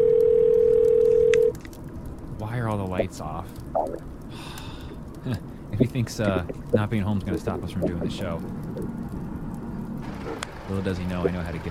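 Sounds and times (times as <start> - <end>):
electronic telephone ringing tone on an outgoing call: 0.0 - 1.5
faint hiss: 0.6 - 11.7
speech: 2.6 - 4.6, 5.2 - 8.9, 10.7 - 11.7.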